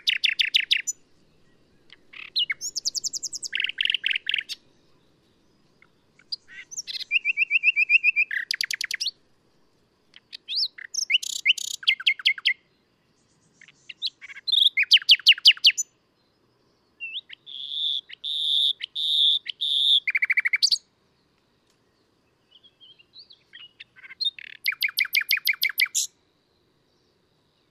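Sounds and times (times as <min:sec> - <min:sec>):
common nightingale Luscinia megarhynchos in full song: 0:00.0 - 0:27.7.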